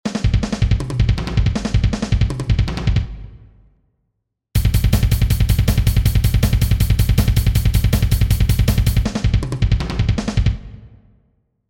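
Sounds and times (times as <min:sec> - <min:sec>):
metal drum pattern: 0:00.1 - 0:03.0, 0:04.6 - 0:10.8.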